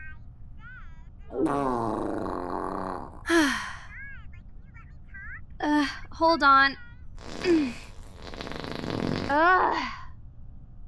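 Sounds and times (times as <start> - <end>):
farts: 1.3 - 3.3, 7.2 - 9.5
speech: 1.4 - 2.1, 6.2 - 7.8, 9.3 - 9.9.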